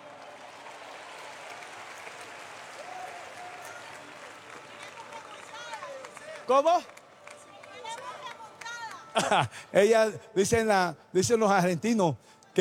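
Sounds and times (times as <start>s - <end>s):
audience applause: 0.0s - 9.6s
speech: 6.5s - 7.0s, 9.2s - 12.5s
laughter: 9.0s - 10.6s.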